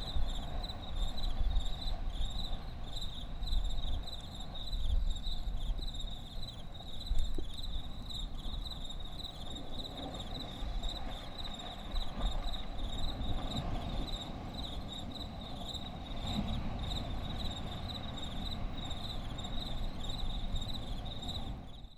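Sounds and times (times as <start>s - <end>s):
crickets chirping: 0.0s - 21.9s.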